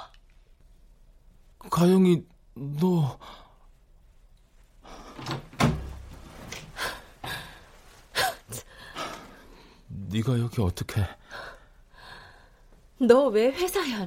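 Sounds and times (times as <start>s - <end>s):
speech: 1.6s - 3.4s, 10.1s - 11.2s, 13.0s - 14.0s
dull thump of a room door latch in a gosiwon: 5.2s - 6.0s
gosiwon room door knocking and rattling as it swings open: 5.2s - 6.1s.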